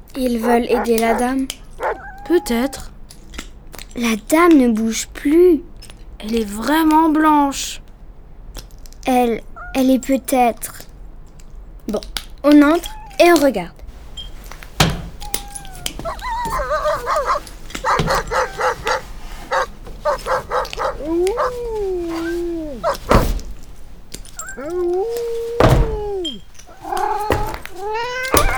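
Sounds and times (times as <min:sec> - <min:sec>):
speech: 0:00.2 - 0:01.6, 0:02.2 - 0:02.9, 0:03.9 - 0:07.8, 0:09.0 - 0:10.9, 0:11.9 - 0:13.8
dogs barking excitedly: 0:00.2 - 0:03.0, 0:09.4 - 0:10.3, 0:12.6 - 0:28.5.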